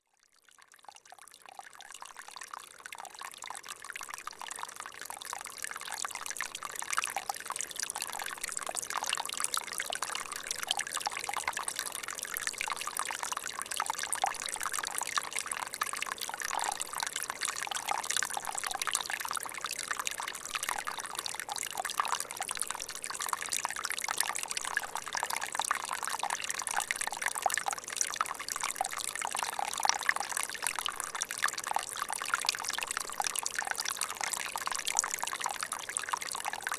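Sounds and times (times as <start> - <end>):
stream at 1700 m: 0.6 - 36.7.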